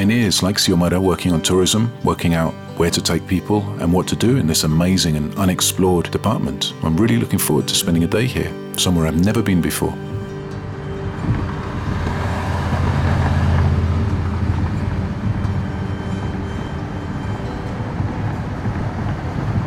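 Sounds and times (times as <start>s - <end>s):
speech: 0.1s - 10.1s
car driving along a road southwest of Florencia: 10.1s - 19.6s.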